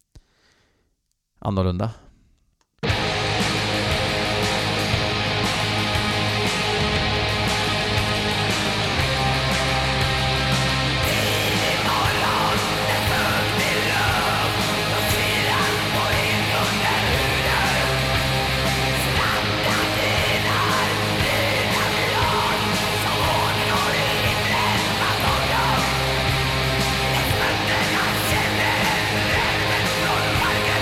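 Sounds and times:
speech: 0:01.4 - 0:02.0
dense distorted guitars of extreme metal song: 0:02.8 - 0:30.8
harsh screamed vocals of extreme metal song: 0:11.0 - 0:30.8.

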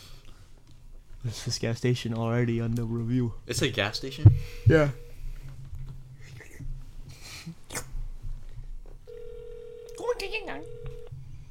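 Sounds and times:
low noise: 0:00.0 - 0:11.4
speech: 0:01.2 - 0:05.0
phone line ringback tone: 0:04.4 - 0:05.4, 0:09.1 - 0:11.2.

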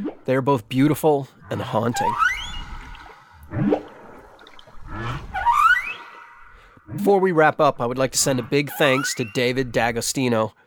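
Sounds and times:
speech: 0:00.2 - 0:02.3, 0:06.9 - 0:10.6
whale song: 0:01.4 - 0:07.1, 0:08.6 - 0:09.7.

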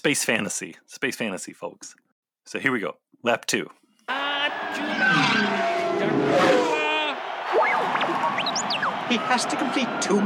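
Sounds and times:
speech: 0:00.0 - 0:06.7, 0:09.1 - 0:10.2
racing vehicle skidding and spinning out of control: 0:04.4 - 0:09.7
racing vehicle engine whining: 0:04.6 - 0:06.9.

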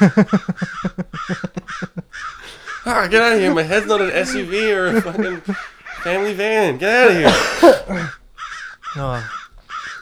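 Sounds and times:
speech: 0:00.0 - 0:01.9, 0:02.9 - 0:08.2, 0:09.0 - 0:09.4
laughter: 0:00.0 - 0:08.2, 0:09.0 - 0:09.3
crow cawing: 0:00.0 - 0:10.0.

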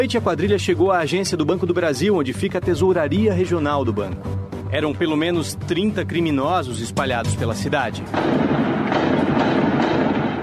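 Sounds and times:
speech: 0:00.0 - 0:09.6
explosions: 0:08.1 - 0:10.4
gunshots: 0:08.1 - 0:10.4.

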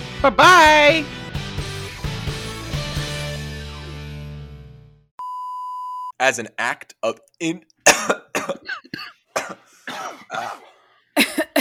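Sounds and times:
speech: 0:00.2 - 0:01.2, 0:06.2 - 0:11.4
person coughing deliberately: 0:07.9 - 0:11.5
throat clearing: 0:07.9 - 0:11.5.

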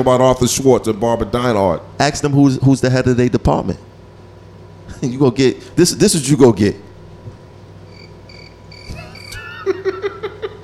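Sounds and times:
speech: 0:00.0 - 0:03.9, 0:05.0 - 0:06.8
crickets chirping in a thin high trill: 0:07.9 - 0:09.5
laughter: 0:08.9 - 0:10.6.

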